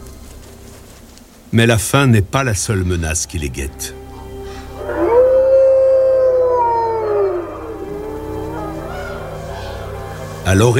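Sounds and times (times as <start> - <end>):
speech: 1.5 - 4.0, 10.5 - 10.7
gray wolf howling: 4.2 - 10.5.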